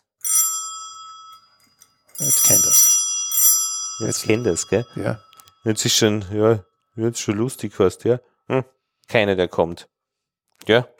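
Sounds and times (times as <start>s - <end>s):
doorbell chime: 0.2s - 6.3s
speech: 2.2s - 3.0s, 4.0s - 9.9s, 10.6s - 10.9s.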